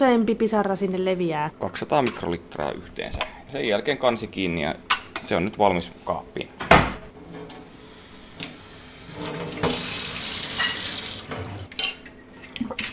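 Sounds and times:
speech: 0.0s - 7.5s
cold tap water running into sample: 7.1s - 11.7s
lab glassware clinking and knocking while being handled: 10.5s - 11.0s.

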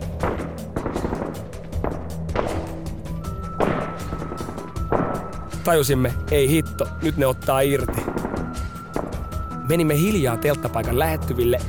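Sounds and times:
sharp gunshots: 0.0s - 2.9s, 3.6s - 5.4s, 7.8s - 9.3s
speech: 5.6s - 8.1s, 9.7s - 11.6s.

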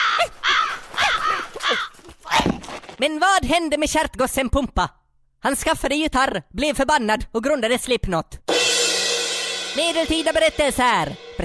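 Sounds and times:
crow cawing: 0.0s - 2.1s
speech: 3.0s - 8.8s, 9.8s - 11.4s.

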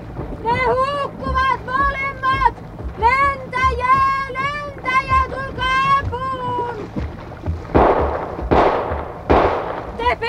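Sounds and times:
frantic shouting voices: 0.4s - 7.0s
gunshots fired at a man in the water: 7.7s - 10.1s.

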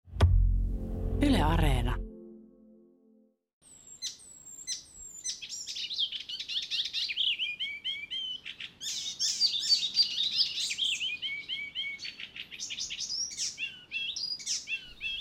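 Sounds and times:
brief low tone: 0.1s - 3.4s
speech: 1.4s - 2.0s
icterine warbler singing: 3.7s - 15.1s.

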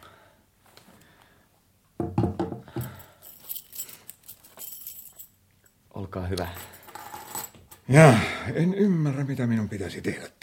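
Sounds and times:
bunch of keys jangling as they are handed over: 2.8s - 5.8s, 6.5s - 7.9s
speech: 6.1s - 6.7s, 7.9s - 10.4s.

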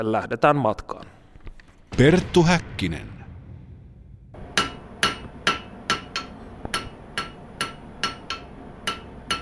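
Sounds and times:
speech: 0.0s - 1.2s, 2.0s - 3.2s
metallic hammer strikes in an armourer's forge: 4.4s - 9.3s.

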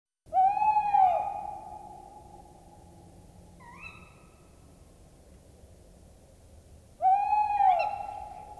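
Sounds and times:
owl giving drawn-out arched wailing notes with rich harmonics: 0.3s - 2.7s, 3.6s - 4.4s, 7.0s - 8.5s.

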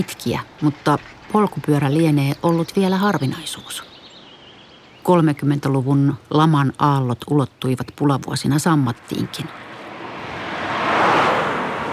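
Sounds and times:
speech: 0.0s - 3.9s, 5.0s - 9.7s
car swooshing past on a narrow winding road: 9.2s - 11.9s.

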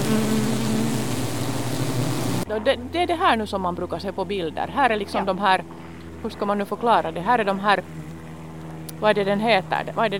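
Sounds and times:
honeybees buzzing around beehives in an apiary: 0.0s - 2.5s, 6.3s - 10.1s
speech: 2.5s - 8.0s, 9.0s - 10.1s.

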